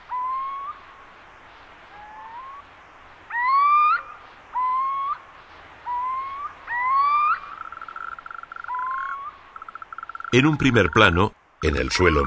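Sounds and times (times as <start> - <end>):
male little owls giving rising mewing calls from rocky outcrops: 0.0 - 1.0, 1.9 - 2.7, 3.3 - 11.2
speech: 10.4 - 12.2.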